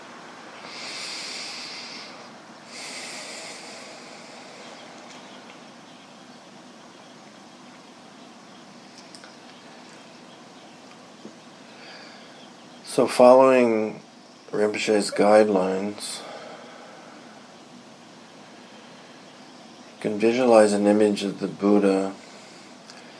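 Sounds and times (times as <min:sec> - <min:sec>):
faint noise: 0:00.0 - 0:23.1
slow hissing breaths in and out before meditation: 0:00.2 - 0:06.2, 0:11.5 - 0:20.0, 0:21.8 - 0:23.1
speech: 0:13.0 - 0:16.2, 0:20.0 - 0:22.2.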